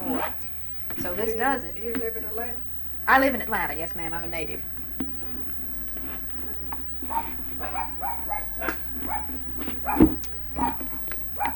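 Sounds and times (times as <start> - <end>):
low steady hum: 0.0 - 11.5
speech: 1.0 - 4.8, 9.8 - 10.8
several dogs barking and yipping: 7.0 - 11.5.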